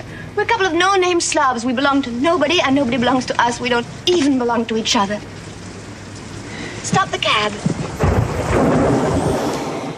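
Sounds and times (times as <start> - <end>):
speech: 0.4 - 5.4, 6.9 - 8.1
steady heavy rain pouring down: 4.8 - 9.9
loud deep rumble of thunder: 7.6 - 9.9.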